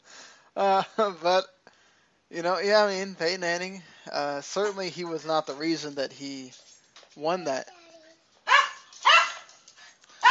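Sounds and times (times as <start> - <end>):
speech: 0.6 - 1.5, 2.3 - 7.8
jealous pet dog barking: 8.5 - 9.5.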